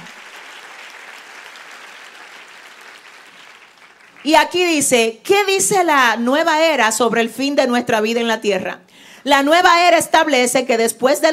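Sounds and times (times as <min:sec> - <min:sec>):
audience applause: 0:00.0 - 0:04.3
speech: 0:04.2 - 0:11.3.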